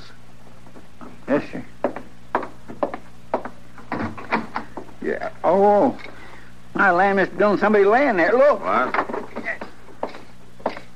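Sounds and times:
speech: 1.3 - 1.8, 5.1 - 6.1, 6.8 - 9.0
wooden door rattling in its frame: 3.8 - 4.8.

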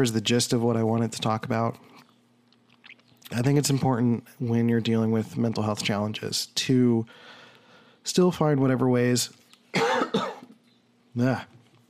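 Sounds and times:
speech: 0.0 - 2.0, 3.3 - 7.4, 8.0 - 10.3, 11.2 - 11.6
person clearing throat with oatmeal stuck in the throat: 9.7 - 10.6
person coughing with oatmeal stuck in the throat: 9.7 - 10.6.

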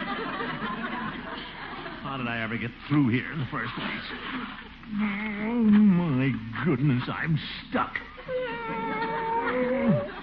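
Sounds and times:
laughter: 0.0 - 10.2
speech: 2.1 - 9.0
cat meowing: 8.3 - 10.2.

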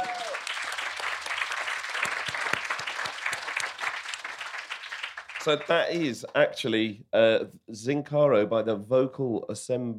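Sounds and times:
faint cheer: 0.0 - 0.7
audience applause: 0.0 - 6.0
speech: 5.4 - 9.9.

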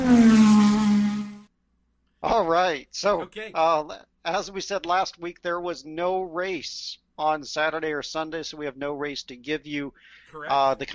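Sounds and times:
NASCAR race car engine screaming past on a track: 0.0 - 1.4
speech: 2.4 - 10.9.

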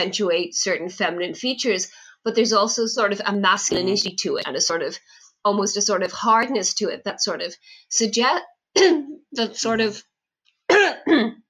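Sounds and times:
speech: 0.0 - 10.1, 10.9 - 11.4
person coughing in short, rough, voiced bursts: 3.7 - 4.0, 10.7 - 11.3.

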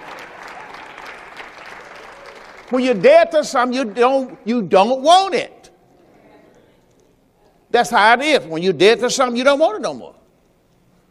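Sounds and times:
audience clapping: 0.0 - 4.6
speech: 2.7 - 5.6, 7.8 - 10.2.

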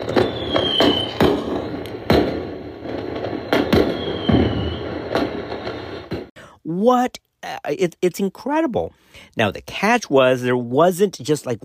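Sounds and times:
fireworks bangs and pops: 0.0 - 6.4
faint rising whistle: 3.9 - 5.0
speech: 6.8 - 11.6.

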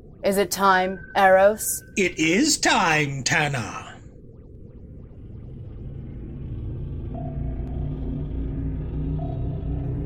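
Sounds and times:
speech: 0.2 - 3.9
spaceship powering up and taking off from Earth: 4.5 - 10.0.

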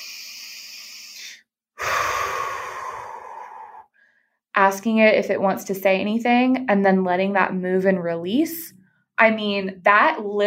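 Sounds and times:
slow deep breath with long airy inhale and fuller exhale: 0.0 - 4.4
speech: 4.6 - 10.4.

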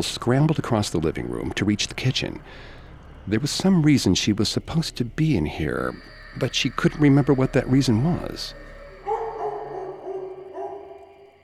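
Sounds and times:
speech: 0.0 - 8.6
large dog barking: 8.4 - 11.3.

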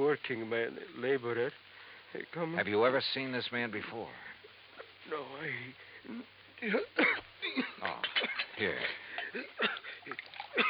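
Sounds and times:
speech: 0.1 - 4.4, 5.0 - 10.6
water being poured for someone: 9.2 - 10.6.

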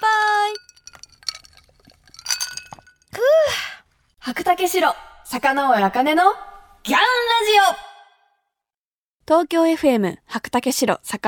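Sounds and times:
glasses clinking in a toast: 0.3 - 3.1
speech: 4.4 - 7.8, 9.3 - 11.2.

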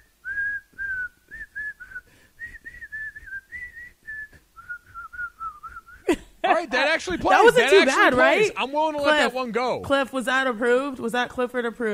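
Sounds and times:
person whistling a melodic tune: 0.2 - 6.1
speech: 6.6 - 11.9.

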